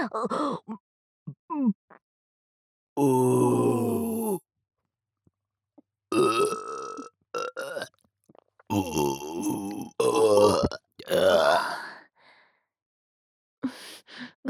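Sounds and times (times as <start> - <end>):
speech: 0.0 - 0.8, 1.5 - 1.8, 3.0 - 3.8, 8.7 - 9.9
guttural burp-like vocalization: 3.0 - 4.4, 6.1 - 7.9, 8.7 - 11.7
long loud resonant belch: 3.0 - 4.4, 6.1 - 7.9, 8.7 - 11.6.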